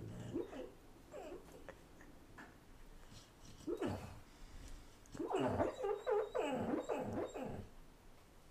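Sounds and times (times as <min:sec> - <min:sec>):
female dog howling and whining while asleep: 0:00.2 - 0:01.6, 0:03.7 - 0:04.2, 0:05.1 - 0:07.7.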